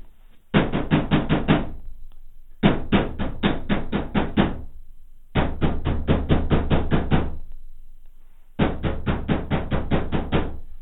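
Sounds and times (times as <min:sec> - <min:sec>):
knocking on a rooftop door: 0:00.5 - 0:01.8, 0:02.6 - 0:04.7, 0:05.3 - 0:07.4, 0:08.6 - 0:10.6.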